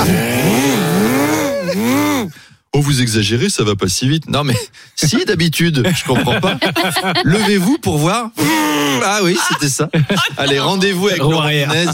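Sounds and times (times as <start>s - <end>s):
quad bike engine running with throttle worked: 0.0s - 2.4s
laughter: 1.1s - 2.2s, 5.8s - 11.9s
speech: 2.8s - 11.9s.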